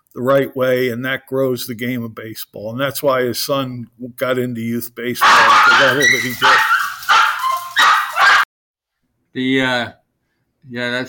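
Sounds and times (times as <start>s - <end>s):
speech: 0.1s - 6.7s, 9.3s - 10.0s, 10.6s - 11.0s
dog barking: 5.2s - 8.5s.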